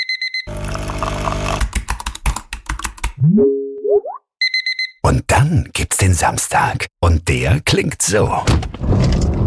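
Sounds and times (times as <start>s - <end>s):
electronic alarm beeping: 0.0s - 0.5s, 4.4s - 5.0s
typing on a computer keyboard: 1.6s - 3.2s
speech: 3.2s - 4.2s, 5.1s - 9.3s
springy rising boing tones: 3.2s - 4.2s.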